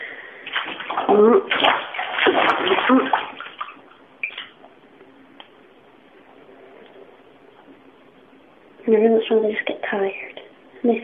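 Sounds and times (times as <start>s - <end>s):
pet rats splashing in bath water: 0.4s - 4.8s
speech: 1.1s - 1.8s, 8.9s - 11.0s.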